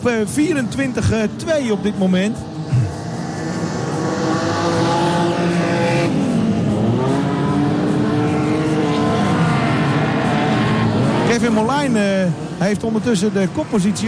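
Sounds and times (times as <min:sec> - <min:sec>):
speech: 0:00.0 - 0:02.8, 0:11.4 - 0:14.0
race car engines revving: 0:00.0 - 0:14.0
race car roaring past on a clay track: 0:00.6 - 0:14.0.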